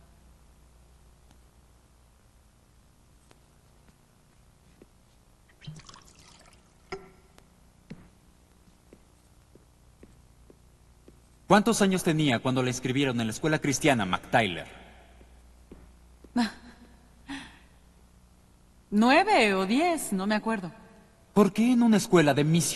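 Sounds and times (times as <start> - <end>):
water pouring into a glass: 5.5 - 7.0
speech: 11.5 - 14.8, 19.0 - 20.8, 21.4 - 22.7.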